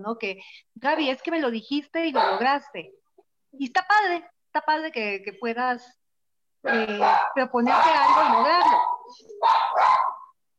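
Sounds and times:
speech: 0:00.0 - 0:03.0, 0:03.6 - 0:06.0, 0:06.6 - 0:10.1
dogs barking: 0:02.1 - 0:02.5, 0:06.7 - 0:10.4.

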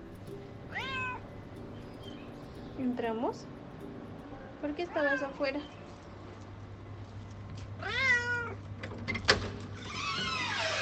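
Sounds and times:
low steady hum: 0:00.0 - 0:10.3
domestic cat meowing at the door: 0:00.7 - 0:01.2, 0:07.8 - 0:08.6
speech: 0:02.8 - 0:03.6, 0:04.6 - 0:05.8.

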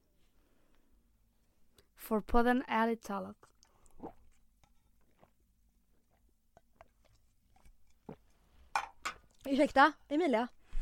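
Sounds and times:
speech: 0:02.1 - 0:04.2, 0:09.5 - 0:10.6
person gulping down a drink after a toast: 0:03.4 - 0:08.4.

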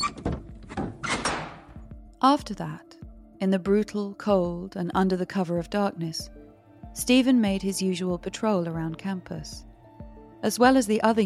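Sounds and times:
heavy church door thudding shut: 0:00.0 - 0:01.8
locks sliding into place on heavy church doors: 0:00.0 - 0:01.8
speech: 0:02.2 - 0:06.4, 0:07.0 - 0:09.7, 0:10.4 - 0:11.2.

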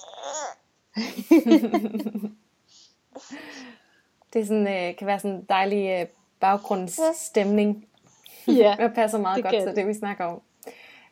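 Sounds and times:
baby boy babbling in someone's arms: 0:00.0 - 0:00.6, 0:06.7 - 0:07.7
speech: 0:00.2 - 0:02.5, 0:04.3 - 0:11.0
laughter: 0:01.0 - 0:02.3.

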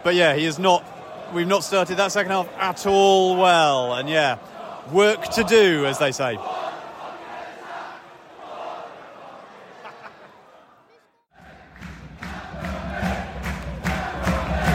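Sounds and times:
speech: 0:00.0 - 0:06.6
large stadium football crowd chanting and cheering: 0:00.0 - 0:14.7
laughter: 0:09.4 - 0:11.1.

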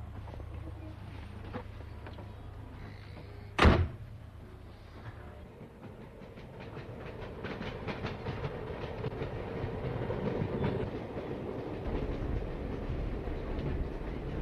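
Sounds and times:
train rumbling along railway tracks: 0:00.0 - 0:14.4.

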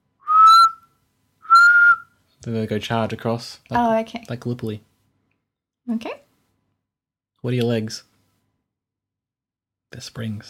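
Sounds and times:
person whistling shrill blasts mimicking a trench whistle: 0:00.2 - 0:00.8, 0:01.5 - 0:02.1
speech: 0:02.4 - 0:04.9, 0:05.9 - 0:06.2, 0:07.4 - 0:08.1, 0:09.9 - 0:10.4.

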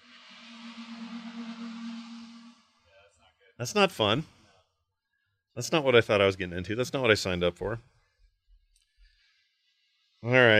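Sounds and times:
cars passing on a slightly rainy day: 0:00.0 - 0:02.8
speech: 0:03.6 - 0:04.3, 0:05.6 - 0:07.9, 0:10.2 - 0:10.5.

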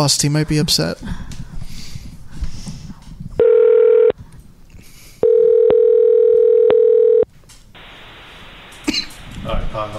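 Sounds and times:
speech: 0:00.0 - 0:01.4
loud steady telephone tone: 0:03.4 - 0:04.2, 0:05.2 - 0:08.1
cough: 0:08.8 - 0:09.2.

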